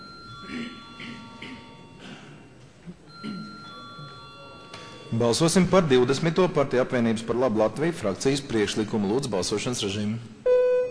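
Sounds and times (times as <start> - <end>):
parliament voting call bell ringing: 0.0 - 2.0, 3.1 - 5.7
speech: 5.1 - 10.4.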